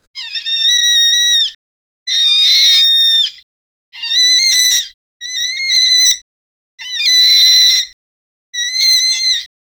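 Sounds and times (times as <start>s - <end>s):
scared rat squeaking loudly: 0.2s - 3.4s, 4.0s - 6.2s, 6.8s - 8.0s, 8.6s - 9.5s.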